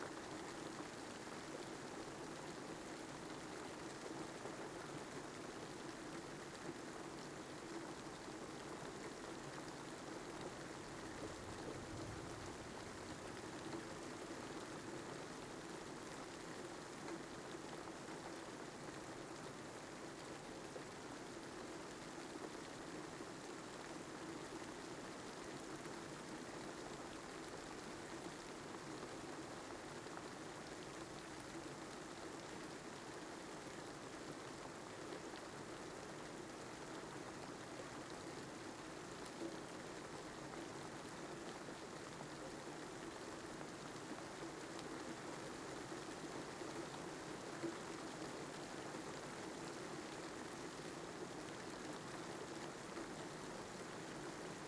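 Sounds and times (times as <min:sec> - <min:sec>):
rain heard from shelter: 0:00.0 - 0:54.6.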